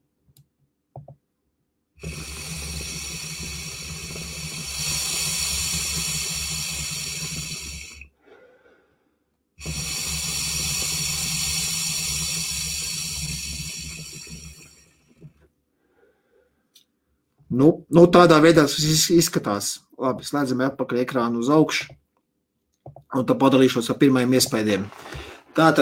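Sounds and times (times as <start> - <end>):
water bubbling and hissing in an electronic water pipe: 2.0 - 8.1, 9.6 - 15.2
speech: 17.6 - 22.0, 23.1 - 25.8.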